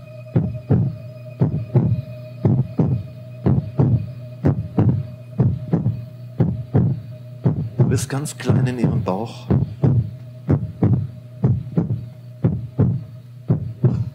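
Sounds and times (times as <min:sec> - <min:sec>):
constant faint hum: 0:00.0 - 0:14.1
low heartbeat: 0:00.4 - 0:14.1
speech: 0:07.9 - 0:09.6.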